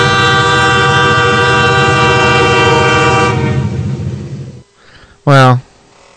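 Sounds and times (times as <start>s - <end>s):
old train horn blast: 0.0s - 4.8s.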